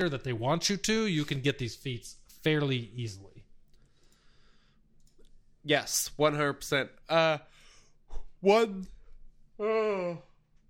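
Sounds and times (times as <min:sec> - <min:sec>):
speech: 0:00.0 - 0:03.3, 0:05.6 - 0:07.5, 0:08.1 - 0:08.9, 0:09.6 - 0:10.3
person yawning: 0:09.6 - 0:10.4.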